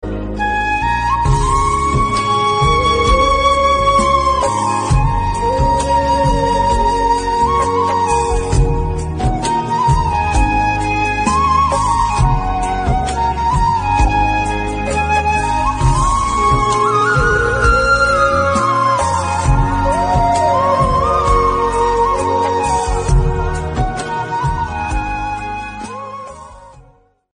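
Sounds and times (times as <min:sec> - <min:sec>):
sad bansuri background instrumental music: 0:00.0 - 0:27.3.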